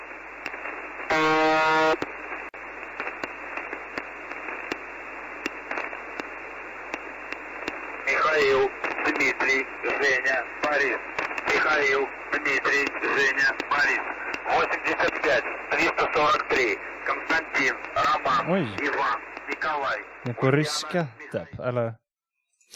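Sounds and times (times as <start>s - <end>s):
Russian shortwave radio transmission hiss and crackle: 0.0s - 21.9s
loud harsh buzzing tone on shortwave radio: 1.1s - 2.0s
distorted voice speaking Russian through shortwave static: 8.0s - 22.0s
speech: 20.3s - 22.0s.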